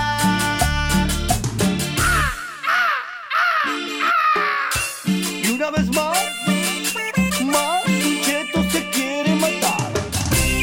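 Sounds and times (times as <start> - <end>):
loud music: 0.0 - 10.6
pet parrot squawking: 2.0 - 5.0.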